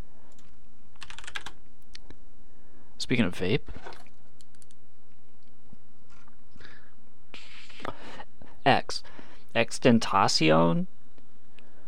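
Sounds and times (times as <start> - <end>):
typing on a computer keyboard: 0.3 - 1.6, 4.3 - 4.8
speech: 3.1 - 4.0, 9.6 - 11.0.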